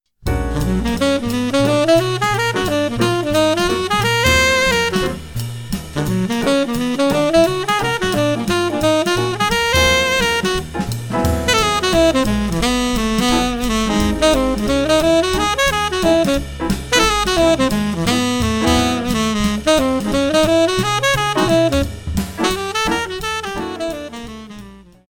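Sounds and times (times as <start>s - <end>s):
slow tenor saxophone licks: 0.2s - 25.0s.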